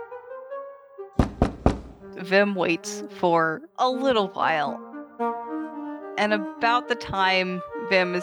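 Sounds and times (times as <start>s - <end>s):
knocking on the front door of an estate: 1.2s - 2.1s
speech: 2.1s - 5.3s, 6.2s - 8.2s.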